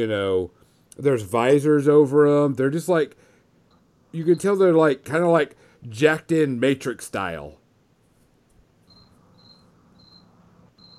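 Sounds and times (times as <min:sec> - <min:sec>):
speech: 0:00.0 - 0:03.3, 0:04.1 - 0:07.6
soft hiss: 0:00.0 - 0:10.9
crickets chirping: 0:08.8 - 0:10.9.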